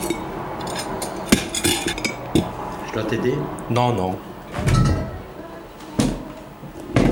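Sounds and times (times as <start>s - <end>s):
dishes and cutlery clattering as they are cleared from a table: 0.0s - 2.5s
speech: 3.0s - 4.7s.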